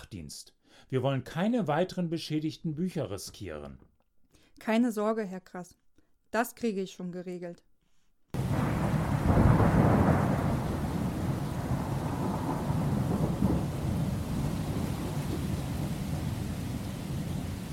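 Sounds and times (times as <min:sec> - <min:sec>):
speech: 0:00.0 - 0:03.9, 0:04.6 - 0:07.7
deep roll of thunder: 0:08.4 - 0:17.7
heavy rainstorm pouring: 0:08.4 - 0:17.7.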